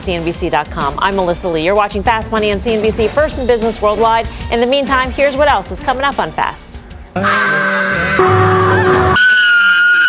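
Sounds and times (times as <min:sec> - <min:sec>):
speech: 0:00.0 - 0:08.4
loud harsh screaming: 0:07.2 - 0:10.0.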